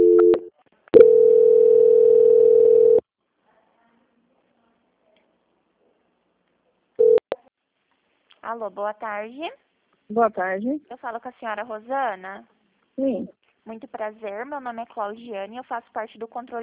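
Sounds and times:
telephone line tones during a bank call transfer: 0.0s - 3.0s
speech: 8.5s - 16.6s.

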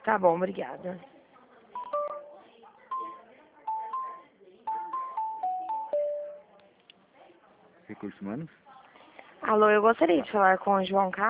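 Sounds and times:
speech: 0.0s - 1.1s, 7.9s - 8.6s, 9.4s - 11.2s
telephone dialing tones while transferring a call: 1.8s - 2.3s, 2.9s - 6.4s.

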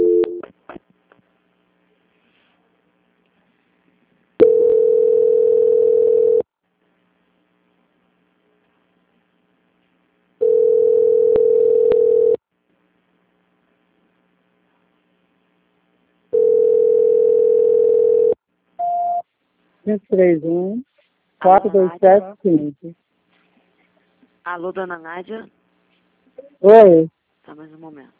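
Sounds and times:
telephone line tone during a call transfer: 0.0s - 0.4s, 4.4s - 6.4s, 10.4s - 12.4s, 16.4s - 19.2s
speech: 19.9s - 23.0s, 24.5s - 25.6s, 26.4s - 28.1s.

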